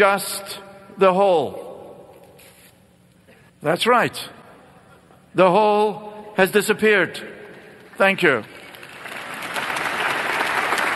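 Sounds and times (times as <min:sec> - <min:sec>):
speech: 0:00.0 - 0:01.6, 0:03.6 - 0:04.4, 0:05.3 - 0:07.4, 0:08.0 - 0:08.6
audience applause at a talk: 0:08.3 - 0:10.9.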